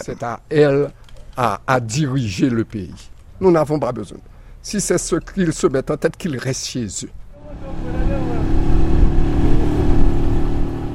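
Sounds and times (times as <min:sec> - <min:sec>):
speech: 0:00.0 - 0:08.0
motorcycle engine droning while riding along a road: 0:07.3 - 0:10.9.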